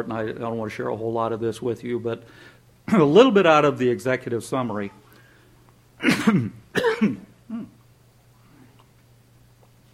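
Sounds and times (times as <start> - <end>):
speech: 0.0 - 5.0, 6.0 - 7.3
man coughing with a tickle in his throat: 6.0 - 7.8.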